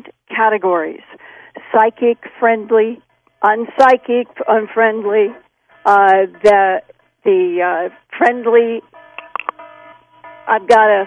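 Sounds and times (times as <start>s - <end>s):
speech: 0.4s - 1.1s, 1.8s - 8.9s, 10.5s - 11.0s
electronic alarm beeps resembling a fire alarm: 8.9s - 10.5s.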